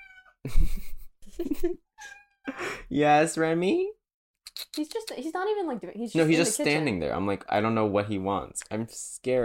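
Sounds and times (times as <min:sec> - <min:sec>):
cat meowing: 0:00.0 - 0:00.4, 0:02.0 - 0:02.6
speech: 0:00.4 - 0:04.0, 0:04.6 - 0:09.4.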